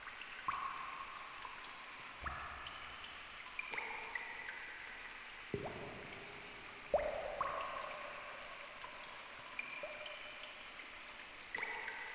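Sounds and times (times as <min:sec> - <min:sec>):
water dripping in a cave: 0:00.0 - 0:12.1.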